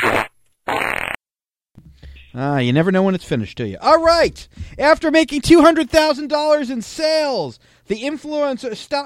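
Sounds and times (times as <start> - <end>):
buzzy fart sound effects: 0.0 - 1.2
speech: 2.3 - 9.0.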